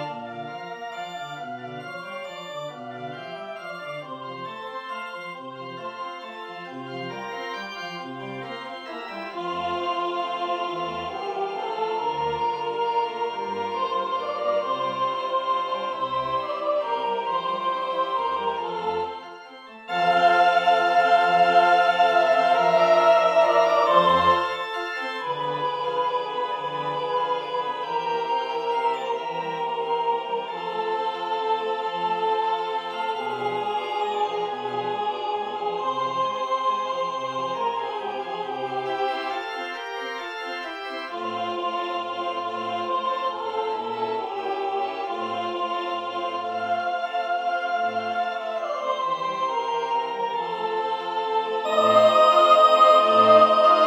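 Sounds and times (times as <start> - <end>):
soprano singing a sacred piece in measured time: 9.2 - 19.2, 19.8 - 39.7, 41.0 - 53.8.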